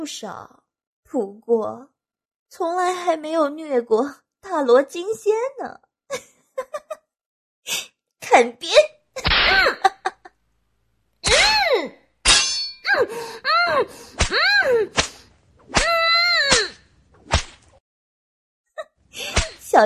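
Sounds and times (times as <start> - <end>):
speech: 0.0 - 1.9, 2.5 - 6.9, 7.7 - 9.9, 12.9 - 15.1, 19.2 - 19.8
whip lashing: 9.2 - 9.8, 15.0 - 17.8, 19.4 - 19.6
person giving drawn-out pained cries and moans: 11.2 - 12.0, 12.9 - 15.0, 15.8 - 16.8.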